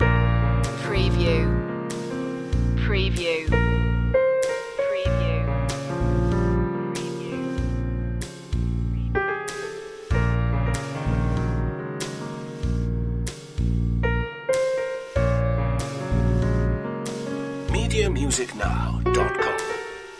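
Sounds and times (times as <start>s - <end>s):
slow swing piano loop: 0.0s - 2.8s, 3.5s - 20.1s.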